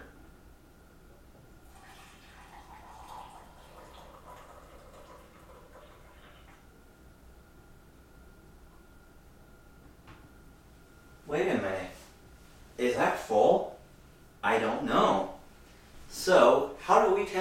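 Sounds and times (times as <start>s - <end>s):
quiet hum: 0.0s - 17.4s
boiling water pouring from lever-operated dispenser for making coffee: 1.6s - 6.6s.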